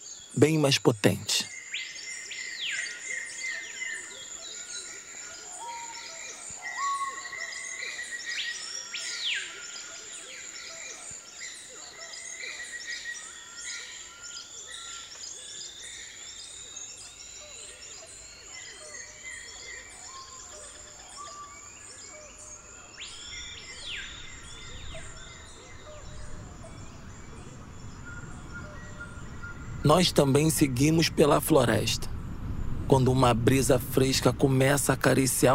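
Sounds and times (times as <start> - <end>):
birds singing in a forest: 0.0 - 32.0
steady high insect drone: 0.0 - 32.2
speech: 0.3 - 1.5, 29.9 - 32.1, 32.9 - 35.5
low rumble: 24.5 - 35.5.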